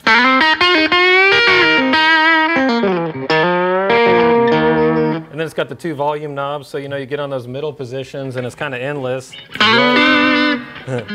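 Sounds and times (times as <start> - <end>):
mini humbucker electric guitar playing a lightly overdriven rock riff: 0.0 - 5.4, 9.3 - 11.1
speech: 5.5 - 11.1
laughter: 10.8 - 11.1.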